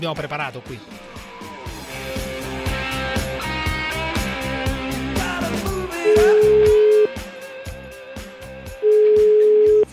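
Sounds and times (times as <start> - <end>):
busy music bed: 0.0 - 9.9
telephone ringback tone on the line: 6.2 - 7.1, 8.8 - 9.9.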